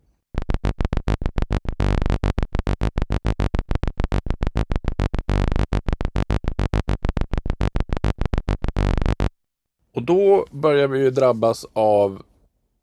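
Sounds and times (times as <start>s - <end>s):
buzzy sawtooth synth bass with square sub-oscillator: 0.3s - 9.5s
speech: 10.0s - 12.3s.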